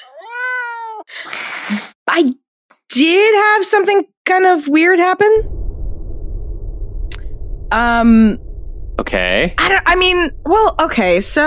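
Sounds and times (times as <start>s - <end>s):
cat giving a drawn-out clear meow: 0.0s - 1.1s
speech: 1.7s - 5.5s, 7.7s - 8.4s, 9.0s - 11.4s.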